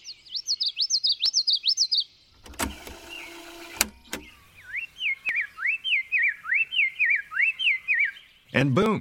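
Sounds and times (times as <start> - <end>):
bird song recorded on tape played back at half speed: 0.0 - 8.9
harsh mechanical whir: 2.4 - 4.4.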